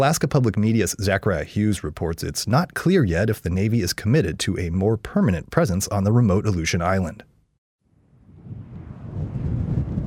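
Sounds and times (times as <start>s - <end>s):
speech: 0.0s - 7.3s
blustery wind and rain outdoors: 8.0s - 10.0s.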